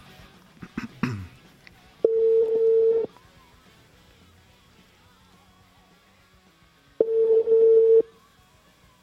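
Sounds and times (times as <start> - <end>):
telephone ringing tone while placing a call: 2.0 - 3.1, 7.0 - 8.1.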